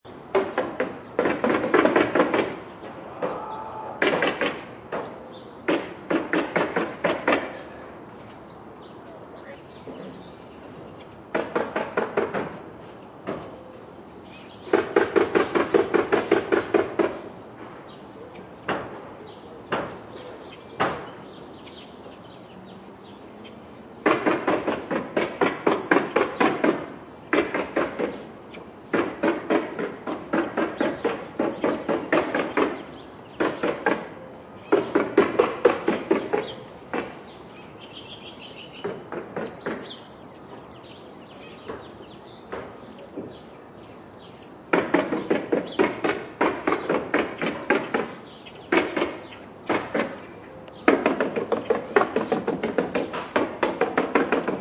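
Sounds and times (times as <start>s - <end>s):
contractors hammering on a house: 0.2s - 7.8s, 11.3s - 13.6s, 14.6s - 17.8s, 18.6s - 21.4s, 24.0s - 37.4s, 38.7s - 41.0s, 41.6s - 43.5s, 44.6s - 54.6s.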